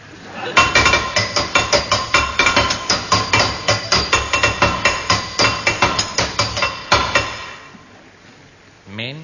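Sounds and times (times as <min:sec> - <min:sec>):
hammer banging on a metal water tap: 0:00.6 - 0:07.8.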